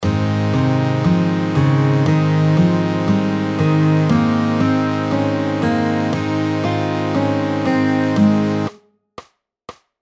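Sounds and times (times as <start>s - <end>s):
A major scale played: 0.0s - 8.8s.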